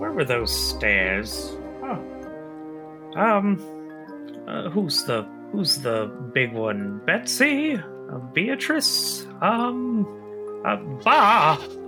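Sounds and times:
speech: 0.2s - 2.2s, 3.1s - 3.8s, 4.5s - 11.8s
person imitating a goat bleat: 11.0s - 11.8s.

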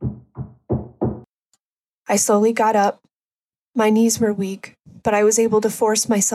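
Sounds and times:
police officers banging on a front door: 0.0s - 1.3s
speech: 2.1s - 3.1s, 3.8s - 6.3s.

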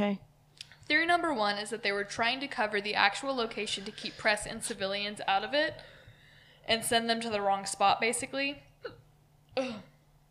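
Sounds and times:
speech: 0.0s - 0.3s, 0.9s - 6.0s, 6.6s - 9.0s, 9.6s - 9.9s
hum: 0.0s - 10.2s
hiccup: 9.6s - 10.0s.

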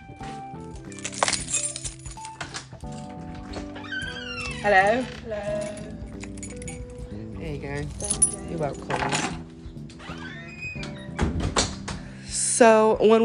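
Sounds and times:
keys jingling as they are handed over: 0.6s - 4.6s, 5.4s - 9.6s
speech: 4.6s - 5.8s, 7.5s - 9.4s, 12.6s - 13.2s.

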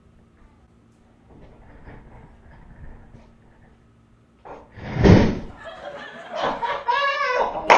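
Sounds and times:
person tumbling out of an office chair: 4.5s - 5.6s
burst of laughter: 5.5s - 7.6s.

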